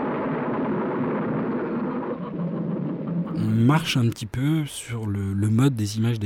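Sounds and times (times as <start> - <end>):
thunder rumbling on an old low-fidelity film recording: 0.0 - 4.4
speech: 3.6 - 6.2.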